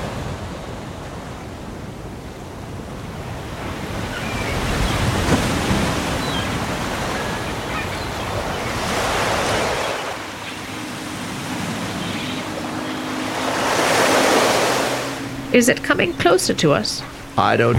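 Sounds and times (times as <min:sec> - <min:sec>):
ocean waves breaking on the shore: 0:00.0 - 0:17.7
speech: 0:15.6 - 0:17.7.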